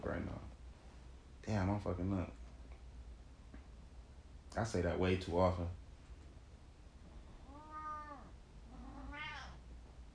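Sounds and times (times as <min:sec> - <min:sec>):
low steady hum: 0:00.0 - 0:10.1
speech: 0:00.1 - 0:00.5, 0:01.4 - 0:02.4, 0:04.5 - 0:05.8
cat meowing: 0:07.4 - 0:09.6.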